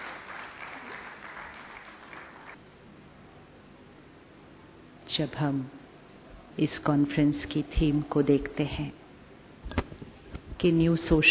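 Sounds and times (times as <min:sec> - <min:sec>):
audience applause: 0:00.0 - 0:02.6
speech: 0:05.1 - 0:05.8, 0:06.6 - 0:09.0, 0:10.6 - 0:11.2.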